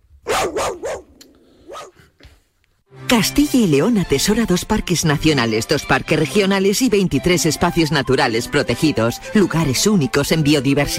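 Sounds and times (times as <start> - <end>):
dog barking: 0.2 - 2.0
speech: 3.1 - 10.9.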